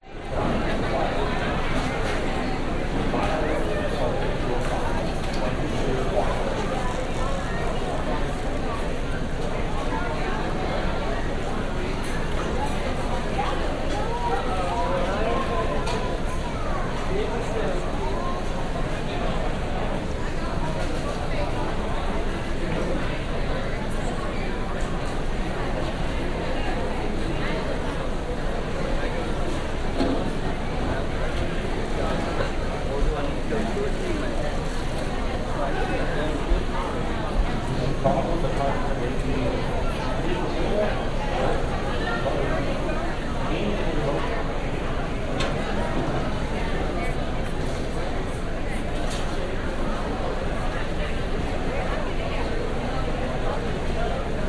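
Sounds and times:
people walla in an airport food hall in Chicago: 0.0s - 54.4s.

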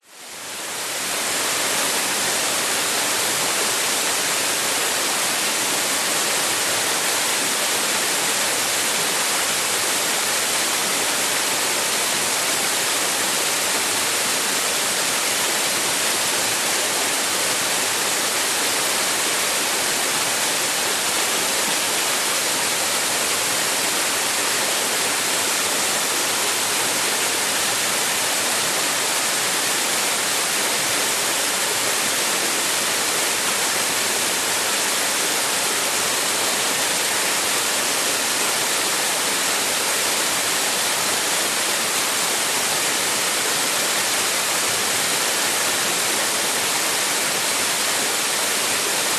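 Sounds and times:
medium waterfall into a lagoon in a rainforest: 0.0s - 49.1s.

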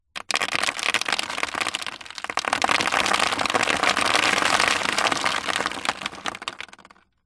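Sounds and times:
small stones and debris tipped into a cardboard box: 0.2s - 7.0s.

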